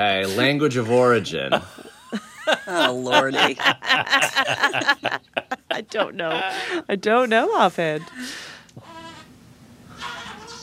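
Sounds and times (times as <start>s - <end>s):
speech: 0.0s - 8.5s
laughter: 0.9s - 6.9s
baby bleating like a goat: 8.8s - 9.3s, 10.0s - 10.6s.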